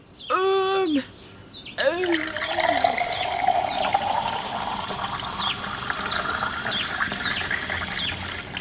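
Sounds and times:
fresh water pouring into a container for a pet: 2.0 - 8.5.

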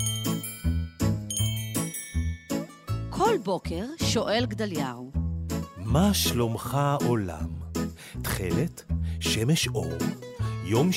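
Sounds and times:
bells on a grocery shop door jingling: 0.0 - 3.1
speech: 3.2 - 5.2, 5.9 - 7.6, 8.4 - 10.9.

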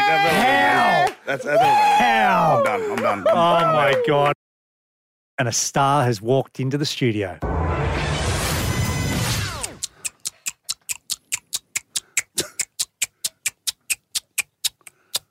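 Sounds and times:
laughter: 0.0 - 4.3
speech: 1.3 - 4.4, 5.4 - 8.0
loud rushing noise: 7.4 - 9.4
person in a studio clicking their mouth imitating a ticking clock: 9.6 - 15.2.

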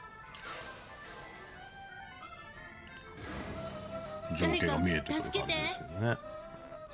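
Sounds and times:
music: 0.0 - 6.9
cage door slamming shut as a sound effect: 0.4 - 1.6, 3.2 - 4.0
speech: 4.3 - 6.4.

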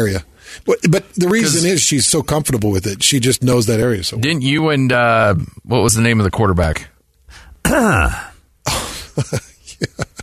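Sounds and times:
speech: 0.0 - 6.9, 7.6 - 10.0
person coughing with a groaning voiced edge: 7.7 - 9.4.

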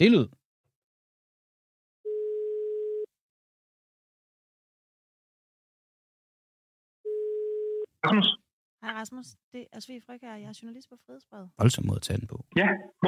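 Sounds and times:
speech: 0.0 - 0.4, 8.0 - 13.0
steady electronic telephone ringback tone: 2.1 - 3.1, 7.1 - 7.9.

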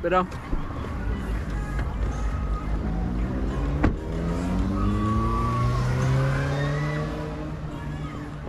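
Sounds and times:
speech: 0.0 - 0.6
faint murmur: 0.0 - 8.4
car engine revving and pulling away from the roadside on a huge field: 2.3 - 8.2.

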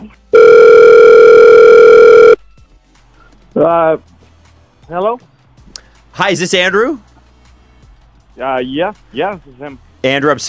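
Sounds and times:
electronic telephone ring tone as a call is placed: 0.3 - 2.4
speech: 3.6 - 4.2, 4.9 - 5.3, 6.2 - 7.1, 8.4 - 10.4.

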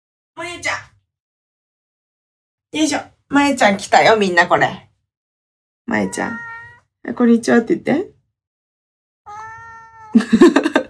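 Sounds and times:
speech: 2.7 - 4.9, 5.9 - 8.1, 10.1 - 10.7
domestic cat meowing: 5.9 - 6.9, 9.2 - 10.2
laughter: 10.2 - 10.8.

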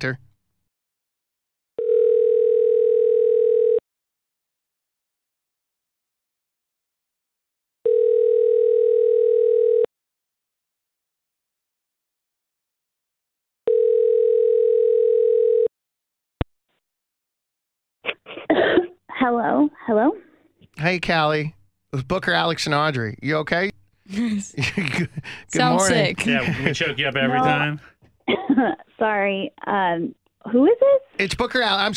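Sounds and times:
speech: 0.0 - 0.3, 19.3 - 20.2, 20.8 - 31.9
telephone ringback tone while a call is being placed: 1.8 - 3.8, 7.8 - 9.9, 13.7 - 15.7
laughter: 24.1 - 28.8.

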